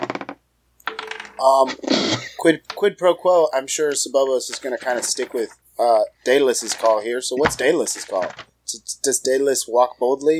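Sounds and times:
dice being rolled clattering: 0.9 - 1.5, 6.6 - 8.5
speech: 1.4 - 10.3.

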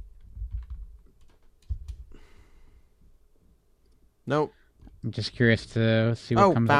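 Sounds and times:
typing on a computer keyboard: 0.2 - 2.0
soft breathy sigh: 2.1 - 2.9
speech: 4.3 - 6.7.

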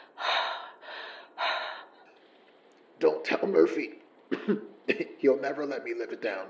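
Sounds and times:
person coming round after falling unconscious gasping deep breaths: 0.0 - 2.1
speech: 3.0 - 6.4.

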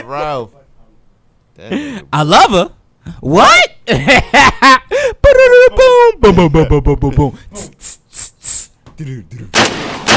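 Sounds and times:
speech: 0.0 - 0.6, 1.6 - 4.8, 6.2 - 8.0, 9.0 - 10.1
vocal snippet: 7.6 - 8.8
gunshot sound effects in a song: 9.5 - 10.1.

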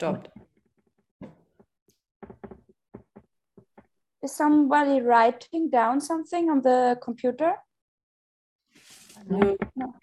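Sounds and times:
speech: 0.0 - 0.4, 4.2 - 7.7, 9.2 - 10.0
sharp hollow knocks: 2.2 - 3.9.

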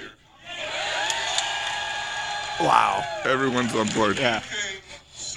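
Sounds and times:
crowd cheering and whooping: 0.5 - 4.1
speech: 2.6 - 4.7.

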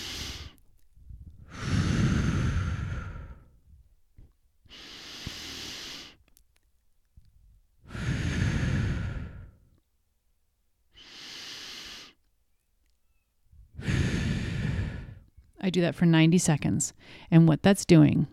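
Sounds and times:
deep breathing as a calming exercise: 0.0 - 6.3, 7.8 - 9.8, 10.9 - 12.3, 13.6 - 15.5
speech: 15.6 - 18.3.

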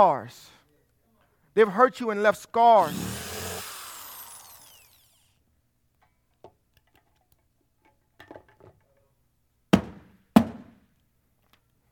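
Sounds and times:
speech: 0.0 - 0.5, 1.6 - 3.1
power drill drilling holes in a box: 2.8 - 5.4.

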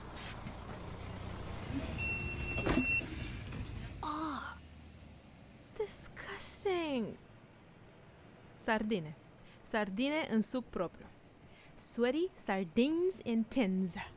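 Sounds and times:
city bus air brakes hissing and squealing: 0.0 - 4.0
city bus engine rumble pulling in to a stop: 0.0 - 11.9
speech: 8.7 - 11.2, 11.9 - 14.1.

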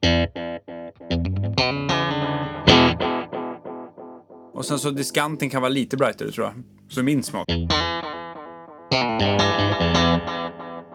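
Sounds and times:
electric guitar played through an echo delay pedal: 0.0 - 4.5, 7.5 - 10.9
speech: 4.6 - 8.1, 9.2 - 10.4.

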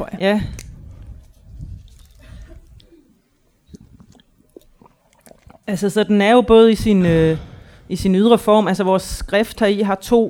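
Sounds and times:
speech: 0.0 - 0.6, 5.7 - 10.2
small wet clicks and drips: 0.0 - 6.0
person sipping water with slurps and swallows: 0.6 - 6.0.

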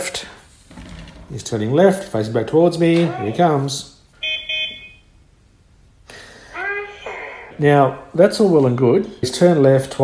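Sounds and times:
speech: 1.3 - 3.9, 7.6 - 10.0
toy robot electronic horn beeps: 4.2 - 5.0
voice-like electronic sound: 6.5 - 8.1.

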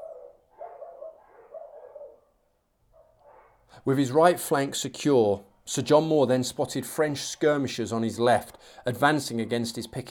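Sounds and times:
dogs barking outside: 0.0 - 3.7
speech: 3.8 - 10.1.

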